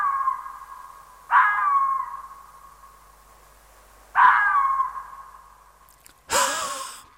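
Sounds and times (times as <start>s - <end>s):
red fox giving hoarse wheezy barks: 1.3s - 2.1s, 4.1s - 5.2s.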